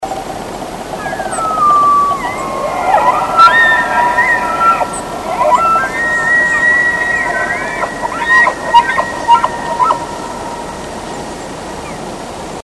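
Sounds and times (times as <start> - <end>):
bull elk bugling at peak: 0.8 - 12.1.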